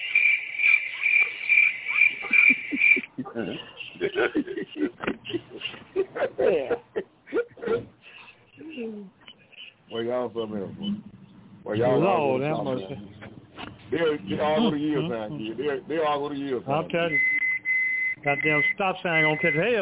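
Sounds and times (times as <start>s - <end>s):
crickets chirping: 0.0s - 5.6s
laughter: 2.1s - 8.0s, 14.1s - 15.6s
speech: 3.4s - 7.1s, 9.9s - 13.1s, 13.9s - 17.3s, 18.2s - 19.8s.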